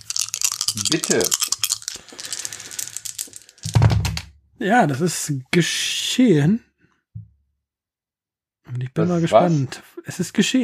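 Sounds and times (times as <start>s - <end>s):
dice clattering and tumbling across a hard surface: 0.0s - 4.3s
speech: 0.7s - 2.4s, 4.6s - 6.7s, 8.8s - 10.6s.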